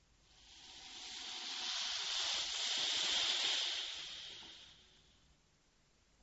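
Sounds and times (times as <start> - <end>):
water spraying from a hose while washing a car: 0.4 - 5.0.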